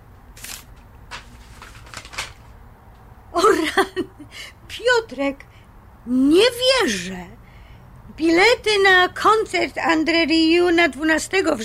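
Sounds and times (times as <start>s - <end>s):
paper envelope torn open and handled: 0.3s - 2.5s
speech: 3.8s - 7.4s, 8.2s - 11.6s.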